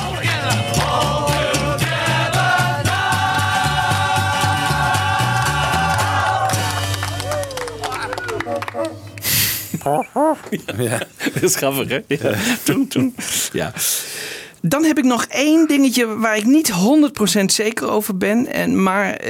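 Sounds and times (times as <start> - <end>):
song with steady bass and sustained tones: 0.0 - 9.3
brief honking novelty horn toots: 0.1 - 9.7
laughter: 6.6 - 13.5
speech: 9.8 - 14.0, 14.6 - 19.2.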